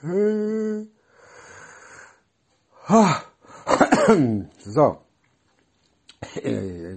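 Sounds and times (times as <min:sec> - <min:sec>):
speech: 0:00.0 - 0:00.5, 0:02.9 - 0:03.2, 0:04.1 - 0:05.0, 0:06.4 - 0:06.9
person yawning: 0:00.0 - 0:00.9, 0:02.8 - 0:03.4, 0:06.4 - 0:06.9.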